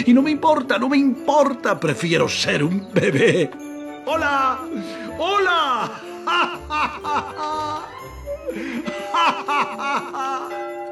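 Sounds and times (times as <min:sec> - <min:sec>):
speech: 0:00.0 - 0:10.7
laughter: 0:02.9 - 0:03.6, 0:05.8 - 0:10.7
bells ringing: 0:04.0 - 0:10.8.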